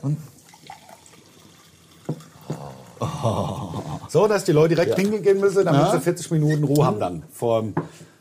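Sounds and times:
speech: 0:00.0 - 0:00.4, 0:03.0 - 0:08.1
water trickling: 0:00.3 - 0:03.0.

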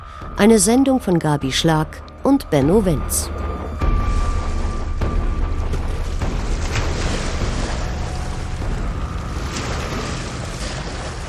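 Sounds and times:
speech: 0:00.3 - 0:03.5
Pacific Ocean surf off the California coast: 0:04.4 - 0:11.2.

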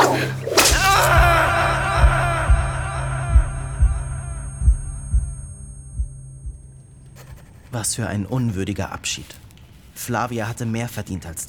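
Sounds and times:
whip crack lashing across a back: 0:00.0 - 0:01.1
low throbbing thuds: 0:00.0 - 0:07.7
faint hum: 0:00.0 - 0:10.0
speech: 0:07.8 - 0:09.4, 0:10.0 - 0:11.4.

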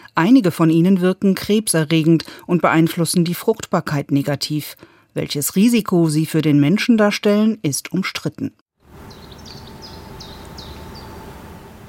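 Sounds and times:
speech: 0:00.2 - 0:08.6
steady low outdoor rumble: 0:08.9 - 0:11.8
bird chirps by a pond: 0:09.0 - 0:11.8.

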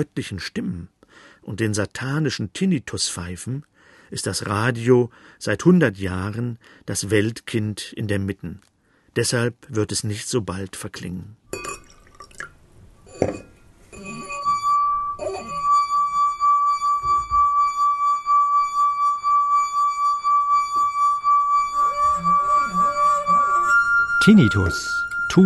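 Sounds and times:
speech: 0:00.0 - 0:11.8, 0:24.2 - 0:25.4
light clinks and drips: 0:11.5 - 0:13.6
glass ringing with a clear sustained pure tone: 0:11.5 - 0:25.4.

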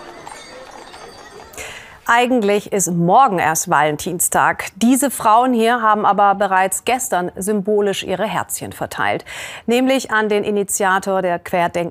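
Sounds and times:
hooves of horse-drawn carriages clip-clopping in a festival parade in Geildorf Germany: 0:00.0 - 0:01.8
outdoor crowd noise: 0:00.0 - 0:02.3
speech: 0:02.1 - 0:11.8.

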